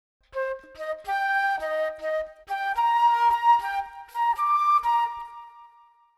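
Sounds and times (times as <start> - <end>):
flute startup jingle: 0.4 - 6.1.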